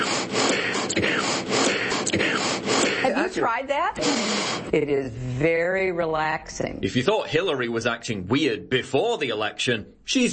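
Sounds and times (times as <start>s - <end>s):
forceful alternate nostril breathing: 0.0s - 3.4s, 4.0s - 5.4s
speech: 1.0s - 1.3s, 3.1s - 10.3s.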